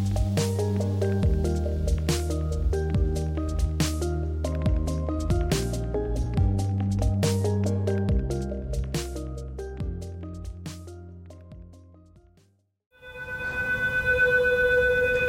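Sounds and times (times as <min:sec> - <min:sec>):
music: 0:00.0 - 0:12.7
high-water flood warning siren: 0:13.0 - 0:15.2.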